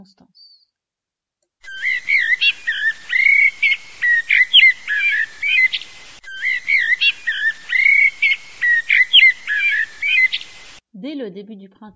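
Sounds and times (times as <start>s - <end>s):
speech: 0.0s - 0.6s, 11.0s - 11.9s
common blackbird singing fluting phrases: 1.6s - 10.8s.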